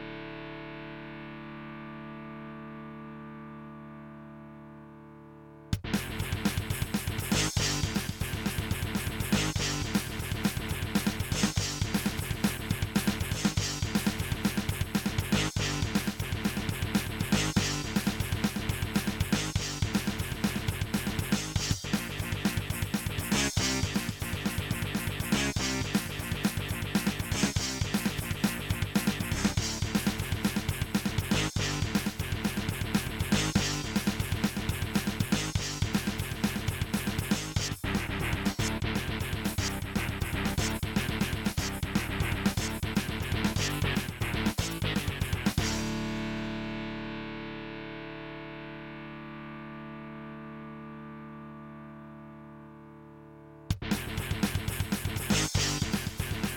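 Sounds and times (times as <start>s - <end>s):
AZTech SoundGalaxy Waverider Pro 32-3D soundcard test sound: 4.2s - 56.5s.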